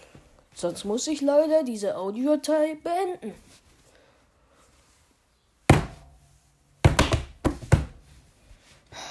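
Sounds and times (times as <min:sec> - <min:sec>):
speech: 0:00.6 - 0:03.6
hard letters dropping and landing with dull thuds: 0:05.7 - 0:06.2, 0:06.8 - 0:08.0.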